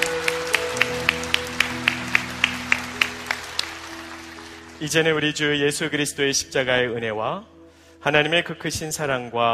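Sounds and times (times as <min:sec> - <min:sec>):
audience clapping in a steady even rhythm: 0:00.0 - 0:05.3
sustained instrumental chords: 0:00.0 - 0:07.7
speech: 0:04.8 - 0:09.5.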